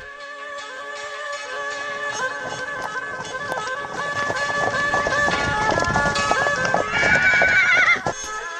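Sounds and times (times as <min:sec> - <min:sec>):
horse hooves galloping along a country road: 0:01.5 - 0:08.4
horse whinnying: 0:05.0 - 0:08.3.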